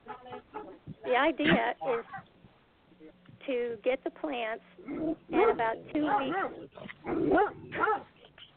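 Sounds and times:
speech: 0:01.2 - 0:02.3, 0:03.5 - 0:08.1
dog barking: 0:05.3 - 0:08.1.

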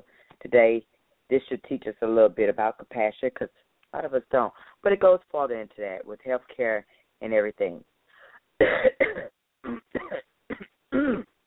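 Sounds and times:
speech: 0:00.4 - 0:07.9, 0:08.6 - 0:09.8
person coughing harshly: 0:08.6 - 0:11.3
person clearing throat: 0:08.6 - 0:11.4.

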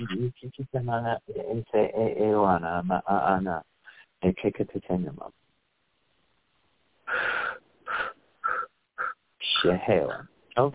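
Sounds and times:
speech: 0:00.0 - 0:05.4, 0:07.1 - 0:08.1, 0:09.5 - 0:10.7
wheezy breaths drawn in during a guided blessing meditation: 0:07.1 - 0:09.2.

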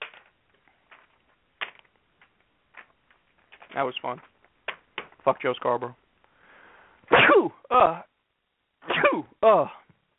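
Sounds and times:
speech: 0:03.8 - 0:04.4, 0:05.3 - 0:06.0, 0:07.7 - 0:08.1, 0:08.9 - 0:09.8
loud sneeze: 0:07.1 - 0:07.8, 0:08.8 - 0:09.4.

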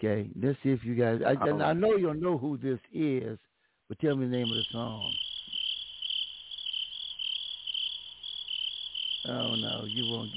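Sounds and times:
speech: 0:00.0 - 0:05.2, 0:09.2 - 0:10.3
dense chorus of crickets chirping in high pulsing trills: 0:04.1 - 0:10.3.

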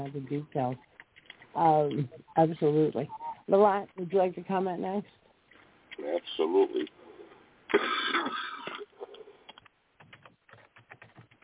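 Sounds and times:
speech: 0:00.0 - 0:00.9, 0:01.5 - 0:05.2, 0:06.0 - 0:07.0, 0:07.7 - 0:08.4
rapid irregular clicks: 0:00.0 - 0:07.8, 0:08.6 - 0:11.4
harsh raspy cough: 0:07.7 - 0:08.9.

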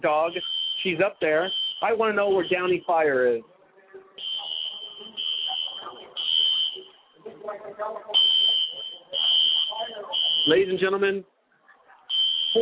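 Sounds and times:
fire alarm buzzing over a stadium PA as a rally sound: 0:00.0 - 0:03.2, 0:04.2 - 0:07.2, 0:08.1 - 0:10.9, 0:12.1 - 0:12.6
speech: 0:00.0 - 0:03.5, 0:10.4 - 0:11.3
crowd and voices at a playoff football game: 0:00.0 - 0:12.6.

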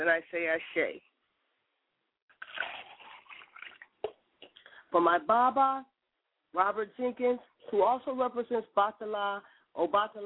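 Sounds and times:
speech: 0:00.0 - 0:01.1, 0:04.9 - 0:05.9, 0:06.5 - 0:10.2
water pouring from a glass in a splashing stream: 0:02.3 - 0:04.2.

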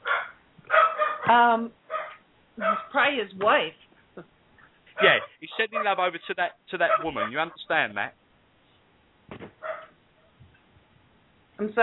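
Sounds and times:
dog barking: 0:00.0 - 0:01.3, 0:01.9 - 0:03.0, 0:05.0 - 0:07.7, 0:09.6 - 0:10.0
speech: 0:01.3 - 0:01.8, 0:02.6 - 0:04.3, 0:05.0 - 0:08.2, 0:11.6 - 0:11.8.

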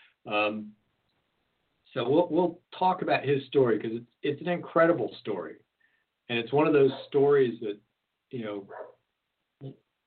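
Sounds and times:
speech: 0:00.2 - 0:00.8, 0:02.0 - 0:05.7, 0:06.3 - 0:08.9, 0:09.6 - 0:09.8
dog barking outside at a squirrel in a tree: 0:06.8 - 0:07.2, 0:08.7 - 0:09.0.

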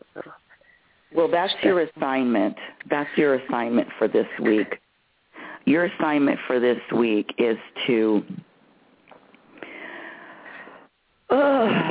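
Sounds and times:
speech: 0:01.2 - 0:04.8, 0:05.6 - 0:08.4
heavy breathing: 0:05.3 - 0:05.7, 0:09.6 - 0:10.9.

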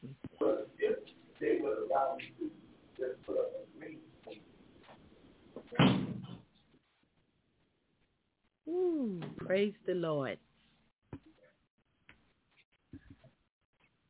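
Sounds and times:
indistinct voices talking: 0:00.4 - 0:04.4
door shutting with a thud: 0:05.7 - 0:06.4
speech: 0:09.6 - 0:10.5.

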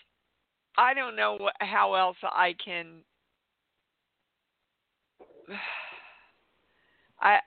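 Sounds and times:
speech: 0:00.8 - 0:03.1, 0:05.5 - 0:05.8, 0:07.2 - 0:07.4
deep breath with a slight wheeze in a breathing exercise: 0:05.3 - 0:07.2.

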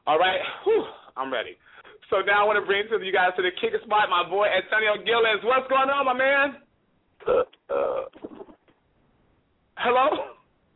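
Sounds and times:
speech: 0:00.0 - 0:06.6, 0:07.2 - 0:08.4, 0:09.8 - 0:10.4
belch: 0:07.2 - 0:08.8.

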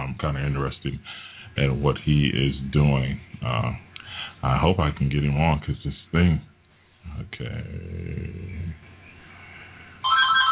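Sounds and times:
noise: 0:00.0 - 0:10.0
speech: 0:00.2 - 0:03.8, 0:04.4 - 0:06.5, 0:07.1 - 0:08.9
loud electronic phone ringtone: 0:10.0 - 0:10.5.

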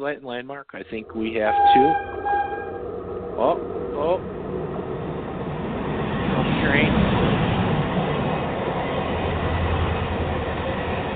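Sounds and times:
speech: 0:00.0 - 0:02.8, 0:03.4 - 0:04.5, 0:06.6 - 0:07.3
rising train squeal: 0:00.8 - 0:08.8
train rumbling with continuous clatter: 0:00.8 - 0:11.1.

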